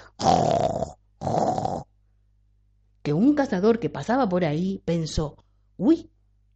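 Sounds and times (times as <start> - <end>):
voice imitating loud rasping snoring: 0.0 - 1.9
speech: 3.4 - 6.1.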